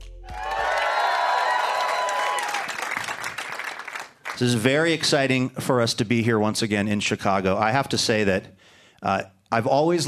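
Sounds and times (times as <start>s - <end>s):
large theater crowd cheering and whooping: 0.0s - 3.7s
large theater crowd applauding: 0.2s - 4.6s
speech: 4.4s - 10.0s.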